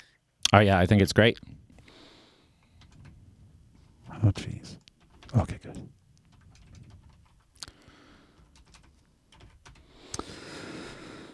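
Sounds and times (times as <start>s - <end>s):
speech: 0.5s - 1.6s, 4.2s - 6.0s
typing on a computer keyboard in a studio: 2.6s - 11.3s.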